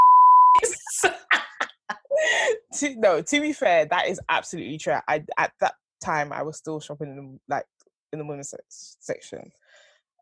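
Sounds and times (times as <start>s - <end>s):
censor bleep tone: 0.0s - 0.6s
laughter: 0.6s - 2.3s
speech: 2.8s - 9.6s.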